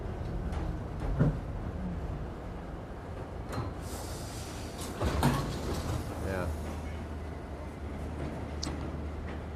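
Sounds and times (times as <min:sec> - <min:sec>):
steady low rumble inside a subway car: 0:00.0 - 0:09.5
subway train doors sliding with airy hiss: 0:03.7 - 0:06.8.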